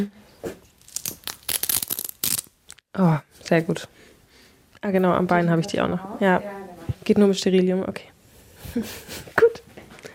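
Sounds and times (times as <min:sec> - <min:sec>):
speech: 0:00.0 - 0:00.6, 0:03.0 - 0:04.0, 0:04.8 - 0:08.1, 0:08.7 - 0:09.4
adhesive tape pulled off skin at the hip: 0:00.8 - 0:02.8.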